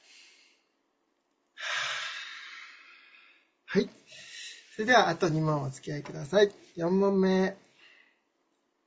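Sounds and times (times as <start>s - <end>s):
soft inhale: 0.0s - 0.7s, 1.6s - 4.8s, 7.7s - 8.3s
speech: 3.7s - 4.2s, 4.8s - 7.6s.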